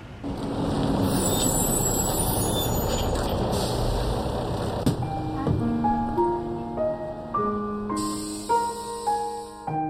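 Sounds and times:
large bus engine idling: 0.0s - 9.6s
bus air brakes hissing: 1.0s - 4.2s, 7.9s - 9.7s.

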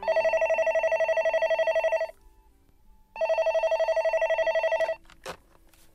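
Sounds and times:
telephone ringing with electronic trilling tone: 0.0s - 2.2s, 3.2s - 5.0s.

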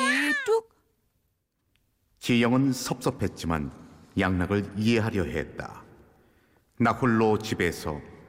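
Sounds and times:
baby crying: 0.0s - 0.6s
speech: 2.3s - 5.8s, 6.8s - 8.1s.

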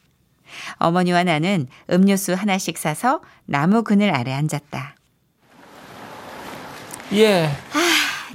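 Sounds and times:
speech: 0.8s - 5.0s, 7.1s - 8.3s
ocean surf at a crowded beach: 5.5s - 8.2s.

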